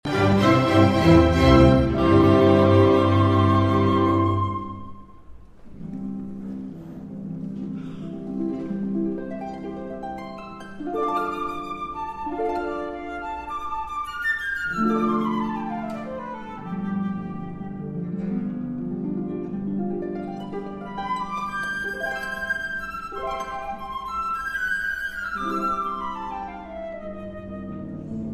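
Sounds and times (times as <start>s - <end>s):
harp playing a concerto cadenza: 0.0s - 28.3s
flute playing a concerto cadenza: 0.1s - 5.4s, 10.6s - 18.7s, 20.4s - 28.3s.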